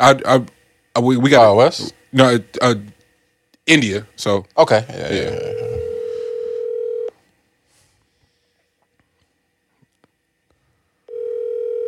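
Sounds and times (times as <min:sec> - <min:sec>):
speech: 0:00.0 - 0:02.9, 0:03.7 - 0:05.7
outgoing phone call ringback tone: 0:05.6 - 0:07.1, 0:11.1 - 0:11.8.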